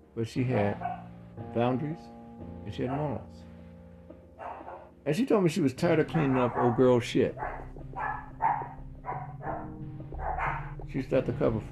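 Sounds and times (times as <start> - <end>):
speech: 0.2 - 3.5, 5.0 - 8.0, 10.9 - 11.6
dogs barking: 0.7 - 1.1, 4.4 - 5.0, 5.9 - 11.0.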